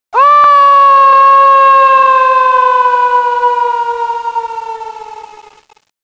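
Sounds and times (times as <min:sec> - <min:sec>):
person screaming while falling: 0:00.2 - 0:03.7.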